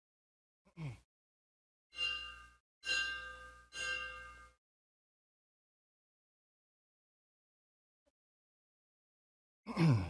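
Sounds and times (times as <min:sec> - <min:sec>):
ceremonial bell clanging: 0:02.0 - 0:04.6.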